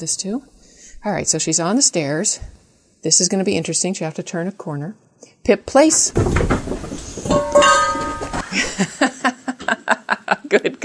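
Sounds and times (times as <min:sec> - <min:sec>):
speech: 0:00.0 - 0:08.0, 0:10.5 - 0:10.8
metal food dishes crashing and clattering: 0:06.9 - 0:08.7
laughter: 0:08.5 - 0:10.8.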